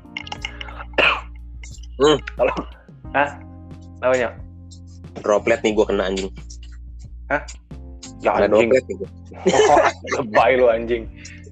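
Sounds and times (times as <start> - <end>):
person coughing: 0.6 - 1.3, 9.4 - 10.2
speech: 1.6 - 3.4, 4.0 - 4.4, 5.2 - 6.4, 7.3 - 7.6, 8.2 - 11.2
laughter: 8.4 - 11.0.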